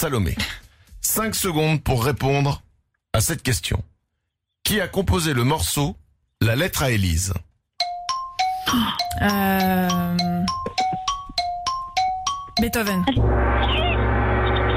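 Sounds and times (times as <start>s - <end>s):
speech: 0.0s - 3.9s, 4.6s - 7.5s, 8.7s - 10.9s, 12.6s - 13.8s
quick run of bright chiming notes in a quiz game: 7.8s - 14.0s
loud sustained gong-like tone marking end of answer time: 13.2s - 14.7s.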